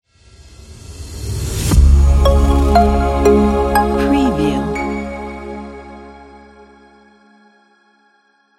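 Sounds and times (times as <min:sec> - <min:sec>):
logo intro jingle: 0:01.7 - 0:06.6.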